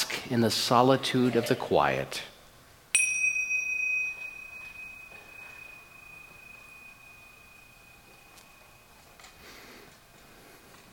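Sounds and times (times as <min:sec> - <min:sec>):
speech: 0:00.3 - 0:02.3
single bell chiming: 0:03.0 - 0:09.3.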